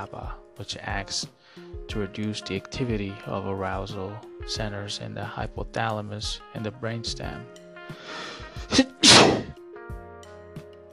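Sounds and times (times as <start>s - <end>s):
speech: 0.0s - 9.5s
sneeze: 8.7s - 9.6s.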